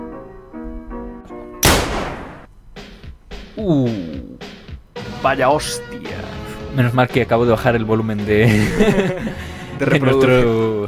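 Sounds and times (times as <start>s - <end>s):
gunshot sound effect: 1.6s - 2.5s
speech: 3.6s - 4.3s, 5.2s - 6.2s, 6.8s - 10.8s
laughter: 8.4s - 10.0s.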